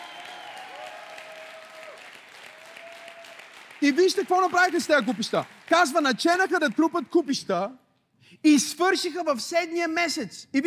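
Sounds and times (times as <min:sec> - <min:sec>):
audience applauding: 0:00.0 - 0:07.2
speech: 0:03.8 - 0:07.8, 0:08.4 - 0:10.6.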